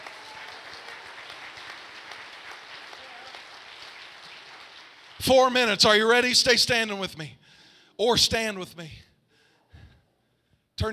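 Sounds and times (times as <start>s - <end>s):
crowd clapping hands in applause: 0.0s - 5.3s
speech: 5.2s - 7.4s, 8.0s - 9.0s, 10.8s - 10.9s.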